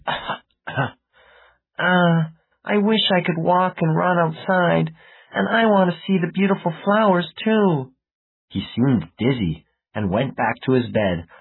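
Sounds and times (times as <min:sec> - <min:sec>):
sick boy coughing: 0:00.0 - 0:00.9
speech: 0:02.8 - 0:11.3.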